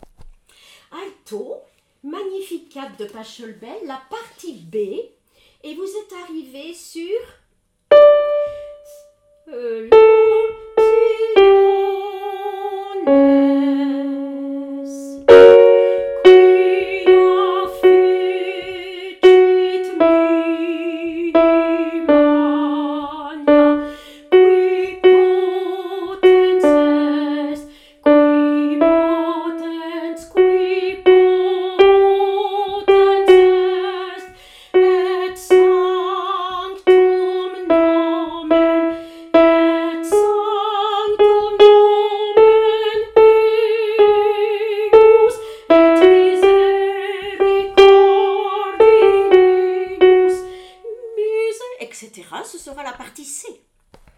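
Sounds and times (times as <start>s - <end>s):
alto voice singing a canticle: 9.9s - 51.1s.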